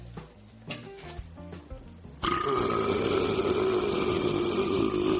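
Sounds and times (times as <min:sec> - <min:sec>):
loud drawn-out belch: 0:02.2 - 0:05.1.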